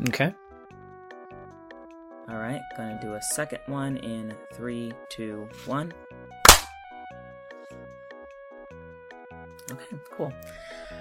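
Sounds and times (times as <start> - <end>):
speech: 0.0 - 0.4, 2.3 - 6.2, 9.7 - 10.9
loud sharp hand clap for audio sync: 6.5 - 6.7.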